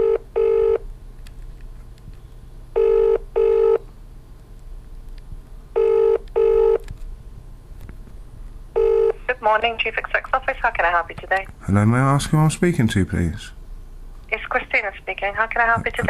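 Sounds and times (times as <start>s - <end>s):
double-burst ringback tone of an outgoing phone call: 0.0s - 0.8s, 2.8s - 3.8s, 5.8s - 6.8s, 8.8s - 9.2s
faint low hum: 0.0s - 16.0s
speech: 9.5s - 13.6s, 15.0s - 16.0s.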